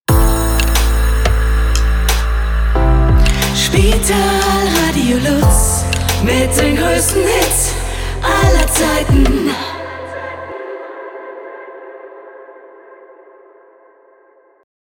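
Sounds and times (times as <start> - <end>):
light jingle music: 0.1 - 9.2.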